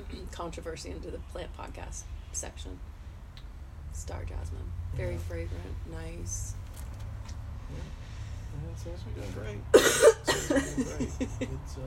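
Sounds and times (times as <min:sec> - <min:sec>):
speech: 0:00.0 - 0:03.0, 0:03.9 - 0:06.6, 0:07.7 - 0:08.0, 0:08.6 - 0:11.8
person giving short dry psychogenic coughs: 0:09.8 - 0:11.2
laughter: 0:09.8 - 0:11.8.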